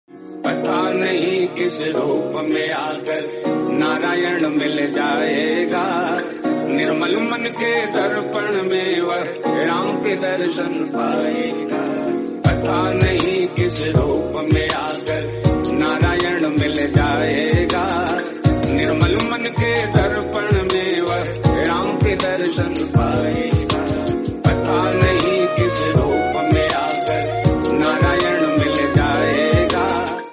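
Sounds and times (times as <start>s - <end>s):
Hindi devotional music ringtone: 0.1s - 30.3s.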